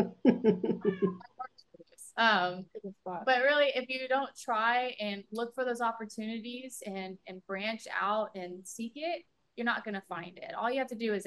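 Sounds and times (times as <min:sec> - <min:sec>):
laughter: 0:00.0 - 0:01.2
speech: 0:00.0 - 0:01.3, 0:02.2 - 0:11.2
old territorial male cat meowing loudly: 0:00.8 - 0:01.2
soft brief cat chirps and squeaks: 0:00.8 - 0:01.3.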